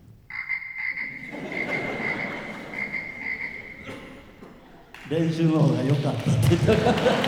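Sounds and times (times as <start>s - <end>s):
frog croaking in rapid trilling calls: 0.3s - 4.4s
laughter: 0.9s - 7.2s
speech: 5.1s - 7.2s.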